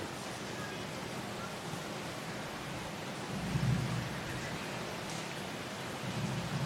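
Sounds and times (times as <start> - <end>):
steady rain: 0.0 - 6.6
deep thunder rumbling: 3.3 - 4.4, 6.0 - 6.6.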